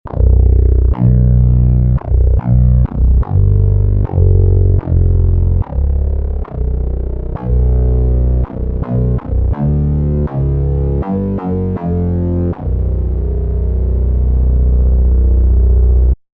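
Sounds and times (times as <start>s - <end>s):
Hydrasynth Explorer synthesizer test sound: 0.1s - 16.2s.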